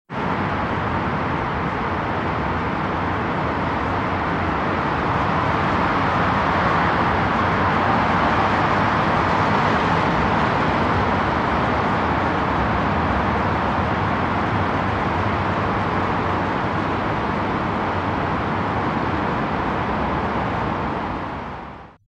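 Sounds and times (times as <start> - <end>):
urban traffic: 0.1 - 22.0.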